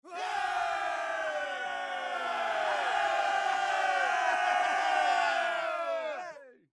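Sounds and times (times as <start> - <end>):
people cheering: 0.0 - 6.6.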